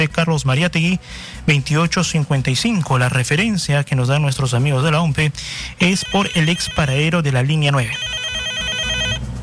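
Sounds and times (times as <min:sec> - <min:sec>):
speech: 0:00.0 - 0:08.2
telephone ringing for an incoming call: 0:05.8 - 0:09.2.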